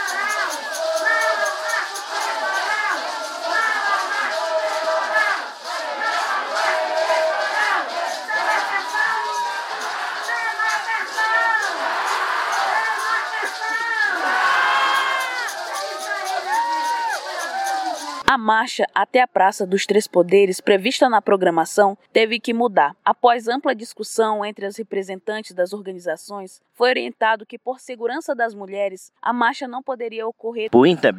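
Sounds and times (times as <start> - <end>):
large crowd of Indigenous delegations chanting and shouting protest slogans: 0.0 - 18.3
speech: 18.4 - 31.1.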